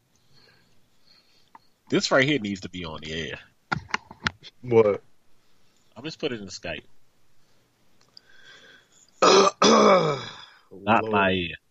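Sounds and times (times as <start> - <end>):
speech: 1.9 - 3.5, 4.6 - 5.1, 6.0 - 7.0, 9.7 - 11.6
throat clearing: 9.2 - 10.5.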